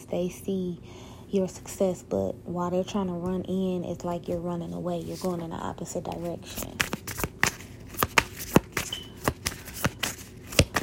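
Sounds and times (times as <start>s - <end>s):
speech: 0.1s - 7.0s
tarot cards being shuffled and drawn during a reading: 4.9s - 10.8s.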